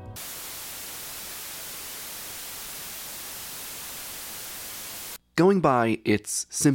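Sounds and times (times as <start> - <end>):
white noise hiss: 0.2 - 5.2
speech: 5.4 - 6.7.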